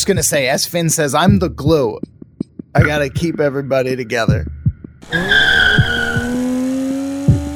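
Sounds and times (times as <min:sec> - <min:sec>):
speech: 0:00.0 - 0:02.1, 0:02.8 - 0:05.6
sustained tire screech of a car peeling out: 0:05.0 - 0:06.9
car engine roar: 0:05.0 - 0:07.5
sharp thumps: 0:05.1 - 0:06.6.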